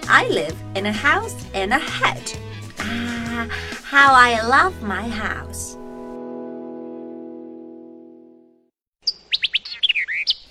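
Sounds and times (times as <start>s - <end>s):
speech: 0.2s - 5.8s
sustained musical tone: 5.7s - 8.6s
bird chirping and trilling: 9.0s - 10.4s.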